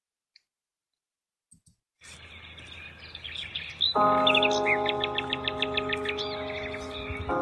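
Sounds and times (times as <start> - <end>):
birds chirping and tweeting: 2.0 - 7.4
steady sustained tonal drone: 4.0 - 7.4.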